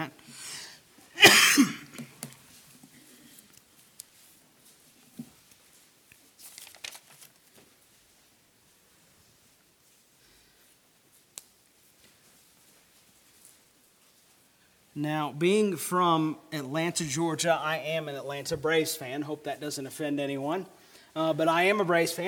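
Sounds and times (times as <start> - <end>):
person coughing: 1.2 - 2.0
speech: 15.0 - 22.2.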